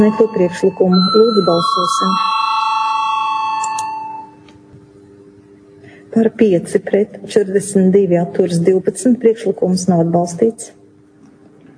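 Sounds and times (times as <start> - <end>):
speech: 0.0 - 2.4, 6.2 - 10.8
bell rung in a parliament chamber to call a vote: 0.0 - 4.4.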